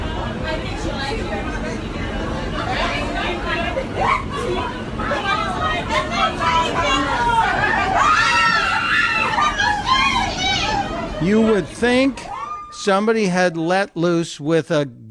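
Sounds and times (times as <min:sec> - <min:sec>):
crowd babble on a subway car: 0:00.0 - 0:13.7
steady noise: 0:00.0 - 0:15.0
women screaming on a subway car: 0:06.7 - 0:12.9
speech: 0:11.3 - 0:15.0.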